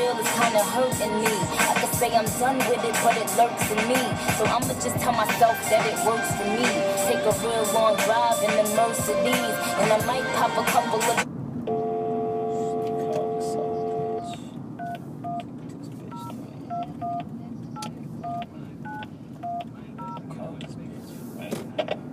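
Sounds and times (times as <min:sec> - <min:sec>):
low rumble: 0:00.0 - 0:22.1
speech: 0:00.4 - 0:11.3
touch-tone telephone keypad beeps dialing a long number: 0:14.8 - 0:15.5, 0:16.1 - 0:17.2, 0:17.8 - 0:20.2.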